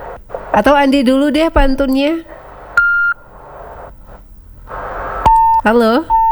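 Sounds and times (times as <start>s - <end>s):
faint static hiss: 0.0s - 6.2s
speech: 0.6s - 2.3s, 5.6s - 6.2s
phone call disconnect beep: 2.7s - 3.9s, 4.8s - 6.2s.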